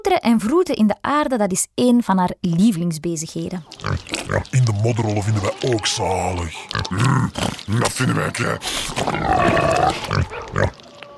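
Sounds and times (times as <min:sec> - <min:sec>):
speech: 0:00.1 - 0:10.8
pig grunting: 0:03.7 - 0:11.0.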